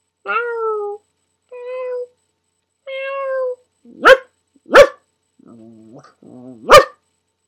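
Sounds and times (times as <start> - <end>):
voice imitating cat meows: 0.3 - 1.0, 2.9 - 3.6
voice making low rough growling sounds: 5.4 - 6.7.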